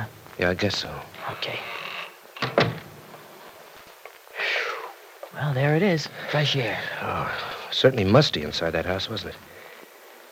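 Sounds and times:
speech: 0.4s - 1.8s, 5.4s - 9.5s
door swinging shut with latch thuds: 2.4s - 3.0s.

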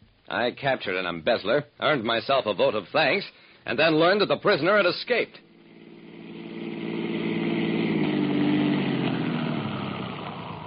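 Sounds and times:
speech: 0.3s - 5.4s
police car engine idling and pulling up: 5.4s - 10.6s.

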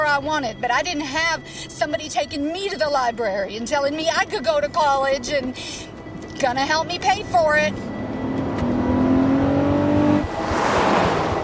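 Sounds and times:
speech: 0.2s - 7.9s
road and wind noise of driving car: 4.2s - 11.4s
car engine revving with rising whine: 7.4s - 11.4s.

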